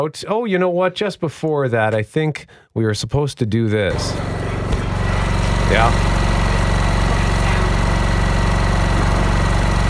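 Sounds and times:
speech: 0.0s - 4.4s, 5.7s - 6.2s
generator engine running: 3.9s - 9.8s.

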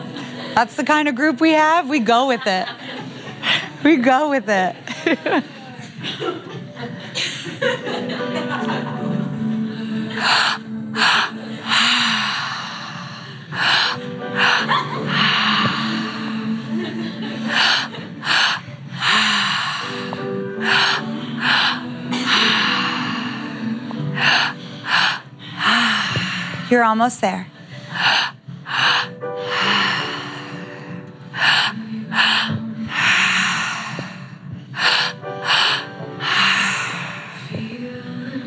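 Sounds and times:
speech: 0.6s - 2.9s, 3.8s - 5.6s, 26.7s - 27.5s
laughter: 2.2s - 3.8s, 4.7s - 9.5s, 14.4s - 18.6s
people sighing: 9.6s - 26.7s, 27.7s - 37.8s
many people breathing forcefully and rhythmically in an active breathwork session: 9.6s - 26.9s, 27.5s - 37.9s
people snorting: 10.2s - 26.7s, 27.9s - 37.6s.

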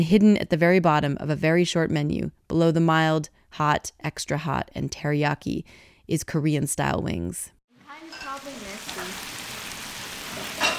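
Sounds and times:
speech: 0.0s - 8.6s
bulgogi sizzling on a tabletop grill: 7.8s - 10.7s.

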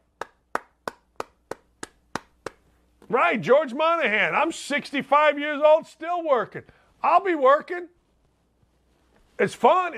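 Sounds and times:
person clapping hands in a small room: 0.0s - 2.6s
speech: 3.1s - 8.0s, 9.4s - 9.9s.

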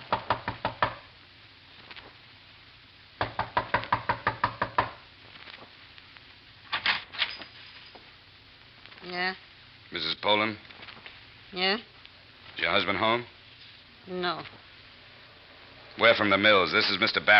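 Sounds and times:
sharp rapid knocking on a door: 0.0s - 1.0s, 3.2s - 5.0s
speech: 9.2s - 10.7s, 11.5s - 11.9s, 12.6s - 13.4s, 14.1s - 14.6s, 16.0s - 17.3s.

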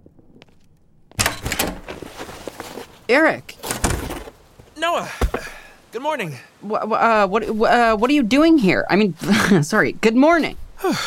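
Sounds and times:
front door clattering open: 1.2s - 2.0s
speech: 3.1s - 3.6s, 4.8s - 5.3s, 5.9s - 11.0s.

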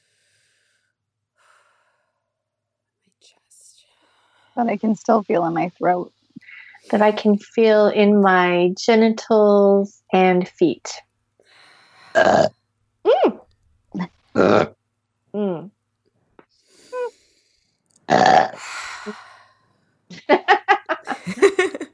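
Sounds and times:
speech: 4.6s - 6.2s, 6.9s - 11.1s, 12.2s - 12.6s, 14.0s - 15.7s
loud burps: 12.2s - 12.5s, 14.0s - 14.7s, 18.1s - 18.6s
giggling laughter: 20.1s - 21.9s.

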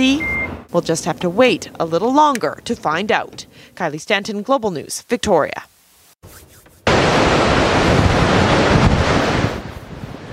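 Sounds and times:
speech: 0.0s - 5.7s
torrent of water rushing through dam floodgates: 6.9s - 10.3s.

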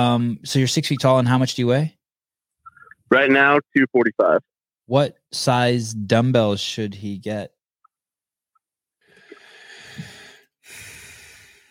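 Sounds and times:
speech: 0.0s - 2.0s, 3.1s - 7.6s
person taking loud gratuitous breaths: 9.1s - 11.7s.

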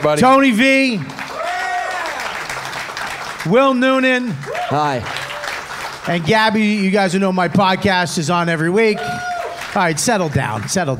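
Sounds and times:
speech: 0.0s - 1.2s, 3.4s - 5.2s, 6.0s - 10.9s
crowd applauding: 0.0s - 10.9s.

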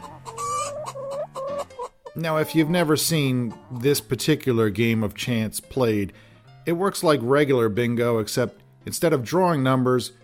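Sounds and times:
chicken clucking and squawking: 0.0s - 4.0s
speech: 2.2s - 10.2s.

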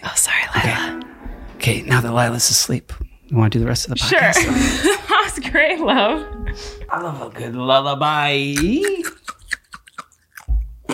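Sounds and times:
speech: 1.7s - 9.0s
person chewing crunchy ice: 9.5s - 10.9s.

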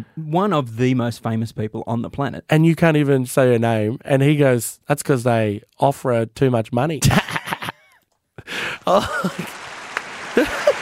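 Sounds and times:
speech: 0.0s - 7.3s, 8.4s - 9.6s
laughter: 7.0s - 10.8s
applause sound effect of dense crowd clapping: 8.5s - 10.8s.

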